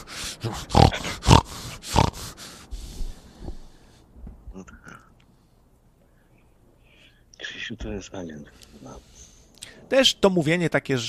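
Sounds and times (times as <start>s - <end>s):
man's breathy snuffles: 0.0s - 3.9s
speech: 0.4s - 0.9s, 7.8s - 9.3s, 9.9s - 11.0s
man making pig-like snorting grunts: 0.4s - 2.2s.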